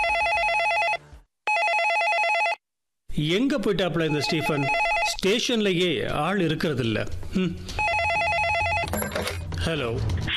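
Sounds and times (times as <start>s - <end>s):
telephone ringing at a police station at night: 0.0s - 2.6s, 4.1s - 5.2s, 7.8s - 9.5s
speech: 3.2s - 7.8s, 9.6s - 10.2s.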